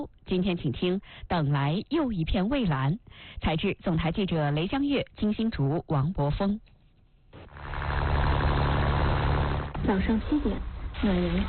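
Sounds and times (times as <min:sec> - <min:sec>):
speech: 0:00.0 - 0:06.7, 0:09.8 - 0:11.4
boat motor starting up in a fishing harbour: 0:07.4 - 0:11.4.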